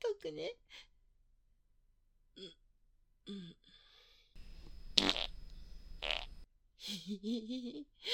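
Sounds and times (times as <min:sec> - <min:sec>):
speech: 0:00.2 - 0:00.9, 0:07.1 - 0:08.1
fart: 0:04.9 - 0:05.4, 0:06.0 - 0:06.4.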